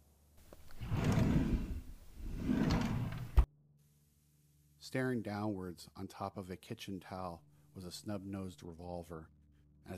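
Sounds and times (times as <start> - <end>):
kitchen drawer sliding open: 0.6 - 3.5
speech: 4.8 - 9.9.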